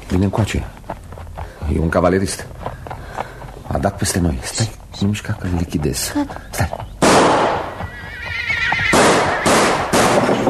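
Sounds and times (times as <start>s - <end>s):
speech: 0.1s - 0.9s, 1.6s - 2.8s, 3.8s - 6.8s
pistol shots: 7.0s - 7.7s, 8.9s - 10.3s
cavalryman's horse whinnying: 7.5s - 10.0s.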